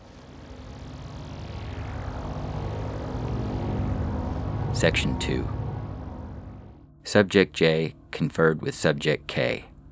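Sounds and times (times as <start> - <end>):
vehicle engine droning while driven through the desert: 0.0 - 7.0
speech: 4.8 - 5.6, 7.1 - 9.9.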